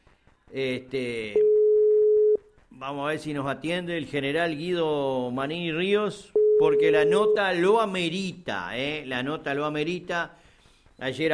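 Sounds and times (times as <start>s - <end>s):
speech: 0.5s - 1.5s, 2.8s - 10.4s, 11.0s - 11.3s
steady low single telephone ringback tone: 6.4s - 7.4s.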